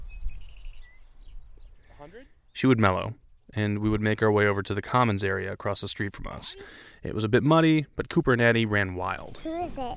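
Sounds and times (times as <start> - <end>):
flock of birds chirping and twittering: 0.0 - 7.1
speech: 2.0 - 9.9.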